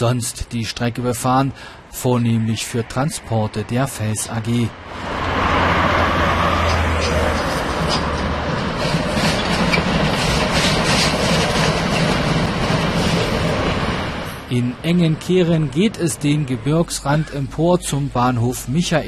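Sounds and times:
speech: 0.0s - 5.2s, 14.5s - 19.0s
class 95 steam locomotive chugging past near a crossing with a federal highway: 5.0s - 18.9s.

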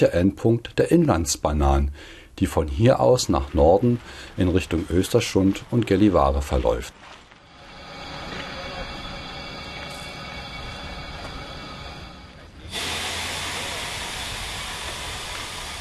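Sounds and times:
speech: 0.0s - 7.2s
railway cars shunting: 7.4s - 15.7s
hissing air burst: 12.6s - 15.7s.

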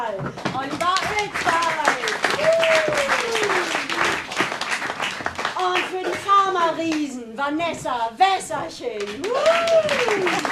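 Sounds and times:
applause from a large audience: 0.9s - 6.3s, 9.1s - 10.5s
speech: 6.7s - 10.5s.

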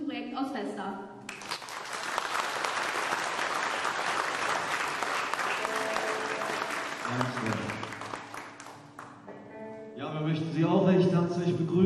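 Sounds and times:
speech: 0.4s - 1.2s, 10.6s - 11.8s
audience applause in a church: 1.3s - 9.2s.

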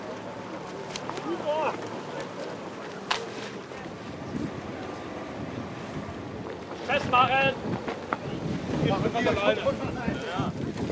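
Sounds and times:
two outboard motors braking a raft on the Elbe river: 0.0s - 10.9s
wind buffeting the microphone: 3.8s - 10.9s
speech: 9.1s - 10.2s.

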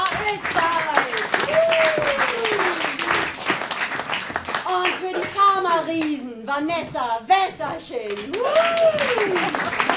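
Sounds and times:
audience applause welcoming guests on stage: 0.1s - 5.3s, 8.2s - 9.9s
speech: 6.6s - 9.9s.

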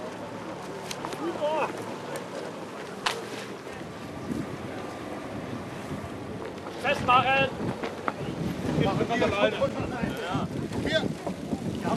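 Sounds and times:
faint voices murmuring: 0.0s - 11.9s
two outboard motors droning on a river raft on the Elbe: 0.0s - 11.9s
wind buffeting the microphone: 3.8s - 11.9s
speech: 7.1s - 7.8s, 9.0s - 10.1s.

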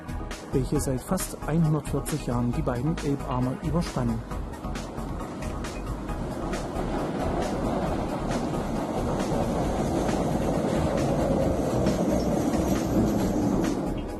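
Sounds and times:
historic Gotha tram rumbling along the rails: 0.3s - 14.1s
speech: 0.5s - 4.5s
tram wheels clicking over track joints: 3.8s - 14.1s.

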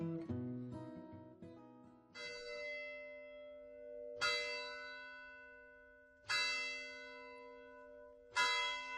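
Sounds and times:
village church bell tolling: 2.1s - 8.9s.

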